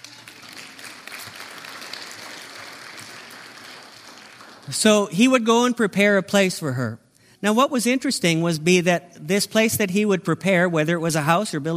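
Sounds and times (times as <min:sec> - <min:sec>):
audience applauding for newlyweds: 0:00.0 - 0:04.9
speech: 0:04.7 - 0:11.7.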